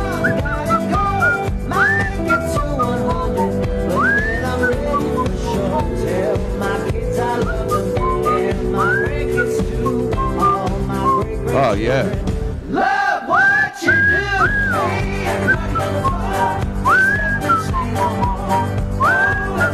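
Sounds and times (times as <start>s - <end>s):
person whistling a song: 0.0s - 11.6s, 13.4s - 19.7s
steady dense musical backing: 0.0s - 12.8s, 13.8s - 19.7s.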